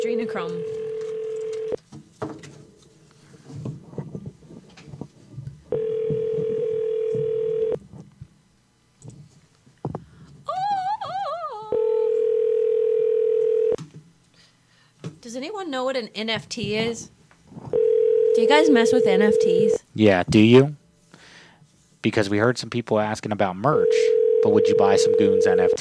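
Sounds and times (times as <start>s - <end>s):
speech: 0.0s - 0.8s, 15.7s - 17.2s, 18.4s - 20.8s, 22.0s - 25.7s
steady telephone tones while a call is placed: 0.0s - 1.8s, 5.7s - 7.8s, 11.7s - 13.8s, 17.7s - 19.8s, 23.8s - 25.7s.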